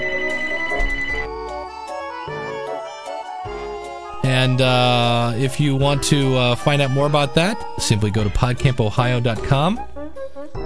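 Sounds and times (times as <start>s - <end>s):
mobile phone ringing with a bright melodic ringtone: 0.0s - 4.1s
speech: 4.4s - 9.9s.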